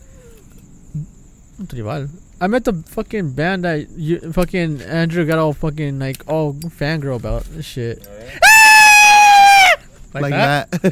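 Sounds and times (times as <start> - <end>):
speech: 1.0 - 8.4, 10.1 - 10.9
voice imitating a high drowsy scream: 8.3 - 9.9.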